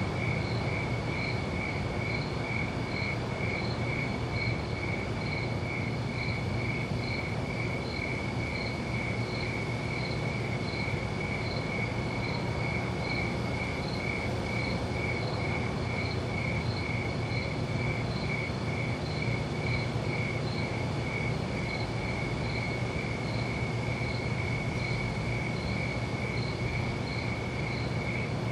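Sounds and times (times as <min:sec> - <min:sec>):
crickets chirping at night: 0:00.0 - 0:28.5.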